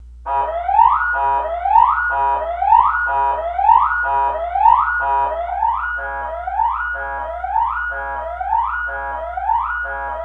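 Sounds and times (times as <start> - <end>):
siren horn: 0.3 - 10.2.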